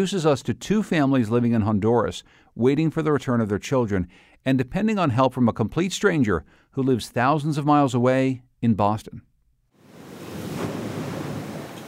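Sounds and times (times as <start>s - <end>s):
speech: 0.0s - 9.3s
Caribbean Sea surf washing in at La Ceiba Honduras: 9.8s - 11.8s
faint breezy hiss: 9.8s - 11.8s.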